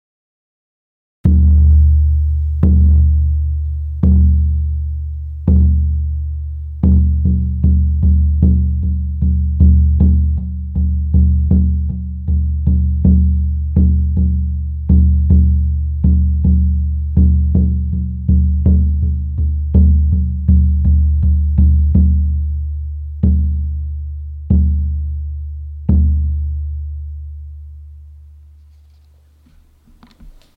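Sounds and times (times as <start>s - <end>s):
45 cm cowhide shaman drum: 1.3s - 27.0s.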